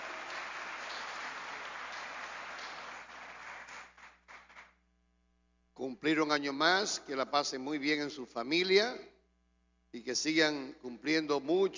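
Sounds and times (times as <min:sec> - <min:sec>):
crowd applauding for people celebrating birthdays: 0:00.0 - 0:04.8
speech: 0:05.8 - 0:09.1, 0:09.9 - 0:11.7.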